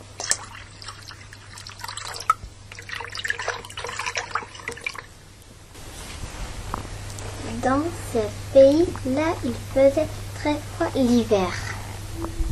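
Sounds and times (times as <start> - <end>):
water drips and small splashes: 0.0 - 5.1
speech: 7.6 - 12.4.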